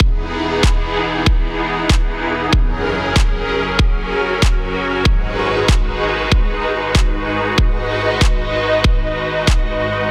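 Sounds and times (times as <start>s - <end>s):
sidechained synth pads: 0.0s - 10.0s.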